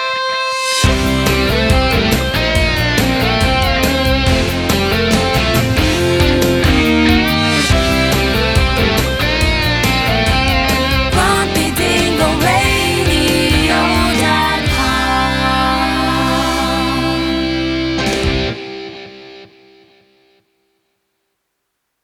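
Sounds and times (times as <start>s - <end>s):
radio jingle ramp: 0.1s - 18.8s.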